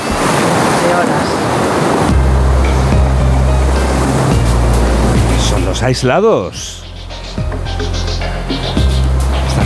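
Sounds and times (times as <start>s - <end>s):
loud surf and crashing waves: 0.0s - 7.6s, 8.2s - 9.6s
low steady engine drone: 2.0s - 9.6s
speech: 5.8s - 6.8s.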